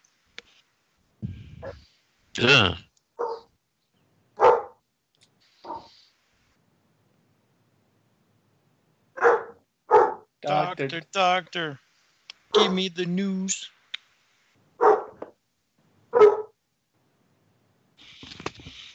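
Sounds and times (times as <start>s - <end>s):
speech: 1.6s - 2.8s, 10.8s - 11.8s, 12.5s - 13.8s
dog barking: 3.2s - 3.5s, 4.4s - 4.8s, 5.6s - 6.0s, 9.2s - 10.3s, 12.5s - 12.8s, 14.8s - 15.3s, 16.1s - 16.6s.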